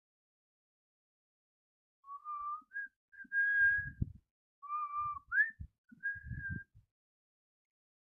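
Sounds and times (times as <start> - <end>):
person whistling a slow wedding march melody in an apartment: 2.1 - 6.8
soft low thumps: 3.5 - 4.2, 4.9 - 6.8.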